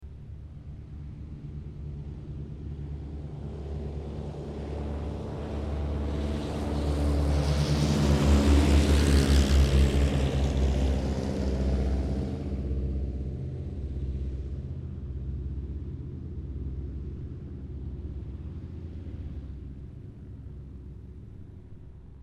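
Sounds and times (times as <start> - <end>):
1950 de Havilland DHA-3 Drover aircraft taking off: 0.1 - 22.2.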